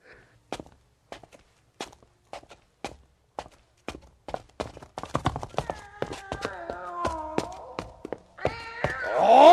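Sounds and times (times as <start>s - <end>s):
footsteps going down stairs to the cellar of an old house: 0.5s - 9.5s
cat meowing and yowling on stairs of an old house: 5.7s - 9.5s.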